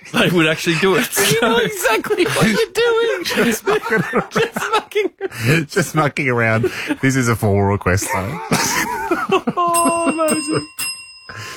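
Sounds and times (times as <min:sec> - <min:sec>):
person laughing: 0:00.0 - 0:05.6, 0:08.0 - 0:10.8
speech: 0:00.1 - 0:11.5
bright metallic bell ringing: 0:09.6 - 0:11.5.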